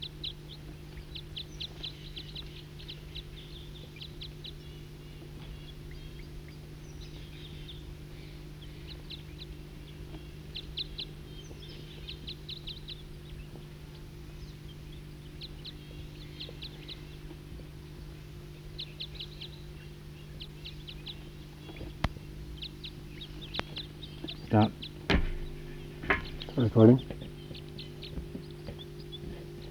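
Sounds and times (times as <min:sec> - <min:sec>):
wild bird calling with short high chirping trills: 0:00.0 - 0:29.7
steady low hum: 0:20.7 - 0:29.7
speech: 0:26.6 - 0:27.2.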